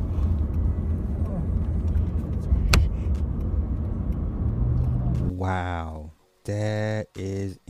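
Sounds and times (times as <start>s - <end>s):
cars driving through a wildfire in British Columbia: 0.0s - 5.3s
speech: 5.4s - 7.6s.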